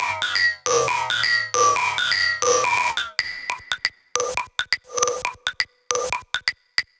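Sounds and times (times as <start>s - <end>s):
percussion loop at 137 BPM: 0.0s - 6.9s.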